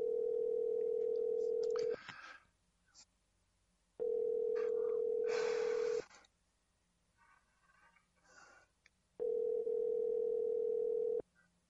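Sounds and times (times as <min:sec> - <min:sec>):
telephone ringing tone heard down the line: 0:00.0 - 0:02.0, 0:04.0 - 0:06.0, 0:09.2 - 0:11.2.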